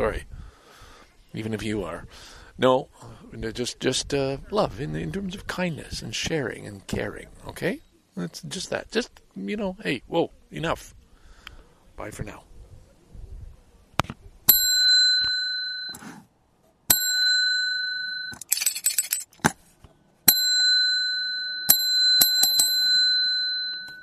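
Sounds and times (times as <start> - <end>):
speech: 0.0 - 0.3, 1.3 - 11.0, 12.0 - 12.5
small bell struck repeatedly: 14.5 - 16.0, 16.9 - 19.3, 20.3 - 24.0.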